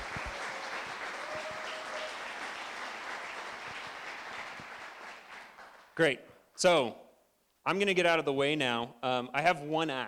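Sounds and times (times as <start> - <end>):
applause from a roomful of people including entrepreneurs: 0.0 - 5.9
speech: 6.0 - 7.0, 7.6 - 10.0.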